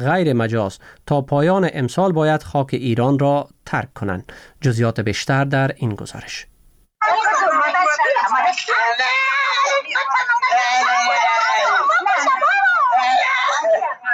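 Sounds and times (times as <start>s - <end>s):
speech: 0.0s - 6.5s
agitated voices: 7.0s - 14.1s
teenager screaming and groaning while being beaten: 7.3s - 14.1s.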